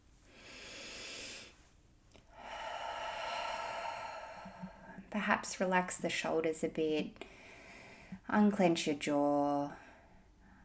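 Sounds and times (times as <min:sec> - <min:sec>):
deep conscious breath: 0:00.3 - 0:01.7, 0:02.3 - 0:05.1, 0:07.2 - 0:08.2, 0:09.8 - 0:10.6
speech: 0:05.1 - 0:07.4, 0:08.3 - 0:09.8.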